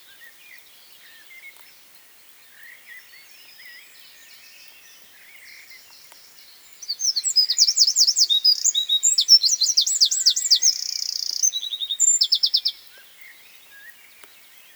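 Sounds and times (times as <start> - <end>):
Eurasian wren Troglodytes troglodytes singing: 3.5 - 13.0.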